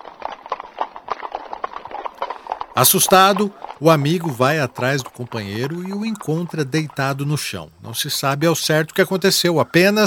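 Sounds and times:
young colt's hooves clip-clopping at a gallop: 0.0s - 10.0s
speech: 2.8s - 10.0s.

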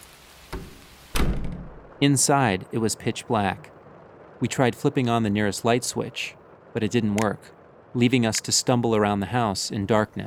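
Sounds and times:
house door pushed open with a thunk: 0.6s - 1.8s
speech: 2.0s - 3.8s, 4.4s - 10.2s.

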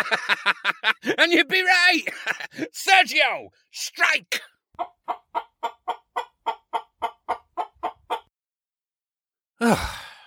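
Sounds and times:
laughter: 0.0s - 2.7s
speech: 0.0s - 6.0s, 9.6s - 10.0s
fighting rooster clucking: 4.8s - 8.3s.

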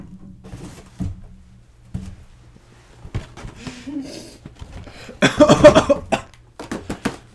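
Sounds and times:
person blowing nose: 3.6s - 6.3s.

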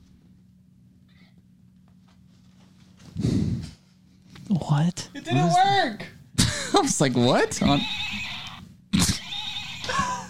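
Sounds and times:
speech: 4.5s - 6.2s, 6.8s - 8.1s
toy stick horse electronic neighing whinny: 7.6s - 10.2s.

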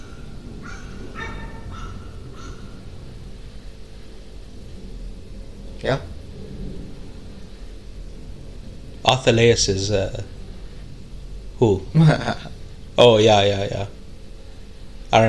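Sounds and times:
dog giving high-pitched yelps: 0.0s - 3.0s
steady low rumble of noise: 0.0s - 15.2s
speech: 5.8s - 6.1s, 9.1s - 10.3s, 11.6s - 14.0s.

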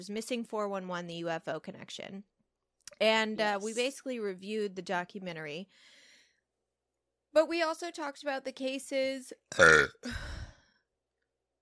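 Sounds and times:
speech: 0.0s - 2.4s, 3.0s - 6.0s, 7.3s - 10.4s
person belching with a rumbling gurgling burp: 9.5s - 10.2s.

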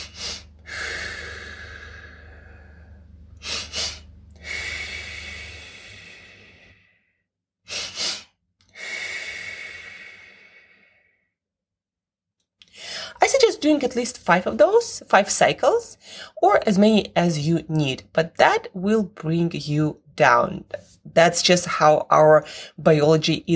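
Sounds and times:
short sniffing nasal inhales: 0.0s - 11.3s, 12.7s - 13.2s
speech: 13.4s - 23.5s.

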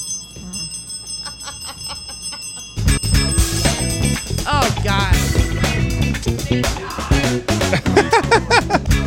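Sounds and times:
bell ringing with rapid repeated strikes: 0.0s - 6.2s
laughter: 1.2s - 2.7s, 6.3s - 8.9s.

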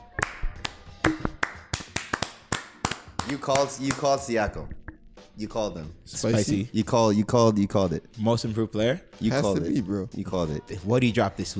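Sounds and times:
small group of people clapping: 0.0s - 4.3s
speech: 3.3s - 4.8s, 5.4s - 11.5s.

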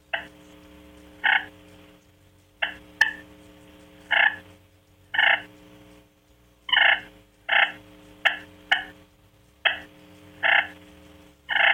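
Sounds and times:
soft turkey clucks and purrs made on a slate call: 1.2s - 1.5s, 4.1s - 4.4s, 5.2s - 5.5s, 6.7s - 9.0s, 9.6s - 10.8s, 11.5s - 11.7s.

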